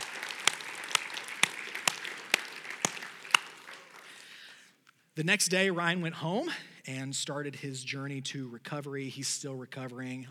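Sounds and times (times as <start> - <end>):
audience clapping in a room: 0.0 - 4.7
speech: 5.2 - 10.3.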